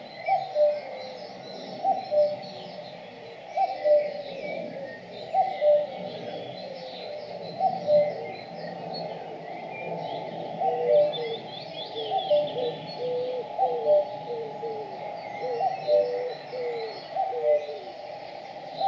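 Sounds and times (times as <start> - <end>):
bird cooing in a forest: 0.0 - 18.8
steady background hum in a forest: 0.0 - 18.8.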